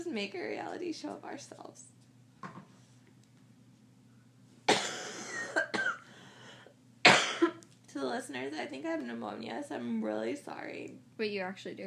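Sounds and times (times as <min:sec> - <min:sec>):
speech: 0:00.1 - 0:02.0, 0:08.0 - 0:11.8
person coughing in a harsh chesty fit: 0:04.7 - 0:06.1, 0:07.1 - 0:07.6.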